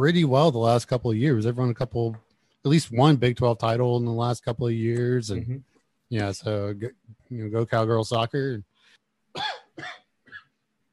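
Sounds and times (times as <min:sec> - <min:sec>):
speech: 0:00.0 - 0:08.7
person coughing: 0:09.4 - 0:10.5.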